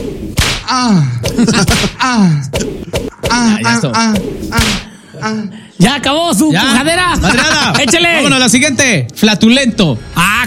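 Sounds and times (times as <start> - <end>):
voice imitating whip cracks: 0.4 - 4.9
speech: 0.7 - 10.4
laughter: 1.3 - 2.3, 6.8 - 8.5.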